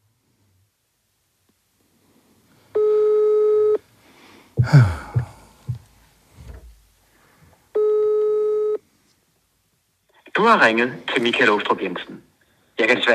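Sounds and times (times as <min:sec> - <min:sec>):
phone ringback tone during an outgoing call: 0:02.8 - 0:03.8, 0:07.8 - 0:08.8
brief sigh or rustling noise: 0:04.5 - 0:06.8
speech: 0:04.7 - 0:05.0, 0:10.5 - 0:13.1.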